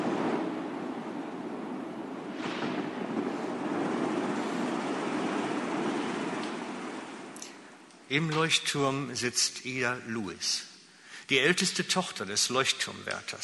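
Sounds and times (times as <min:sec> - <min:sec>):
wind noise: 0:00.0 - 0:07.4
powerful ocean wave crashing in icy cold water: 0:02.2 - 0:07.8
speech: 0:08.1 - 0:10.7, 0:11.3 - 0:13.4.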